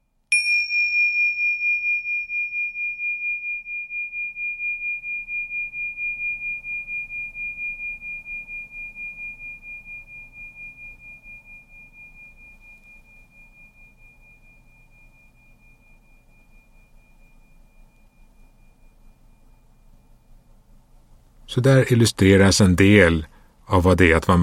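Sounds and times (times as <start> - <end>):
clear bell strike for a mindfulness listening exercise: 0.3 - 20.6
speech: 21.5 - 24.4.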